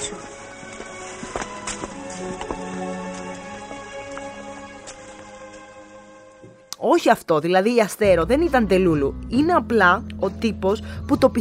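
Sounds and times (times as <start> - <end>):
ridden horses' hooves clip-clopping: 0.0 - 6.6
speech: 6.9 - 11.3.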